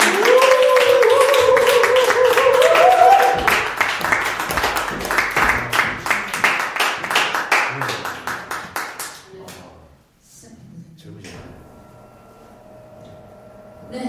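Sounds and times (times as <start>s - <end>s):
audience applause welcoming a guest: 0.0s - 9.2s.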